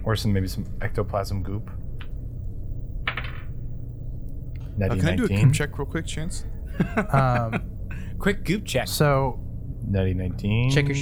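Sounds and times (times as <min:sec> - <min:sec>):
steady low rumble: 0:00.0 - 0:10.9
speech: 0:00.1 - 0:01.8, 0:04.8 - 0:10.9
dice tumbling across a hard tabletop: 0:03.0 - 0:03.6
laughter: 0:04.9 - 0:05.8, 0:06.6 - 0:08.2.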